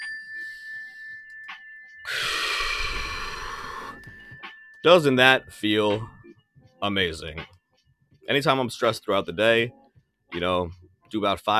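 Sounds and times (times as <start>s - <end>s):
slow deep breath for a mindfulness exercise: 2.1s - 4.2s
speech: 4.8s - 6.2s, 6.8s - 7.5s, 8.3s - 11.5s.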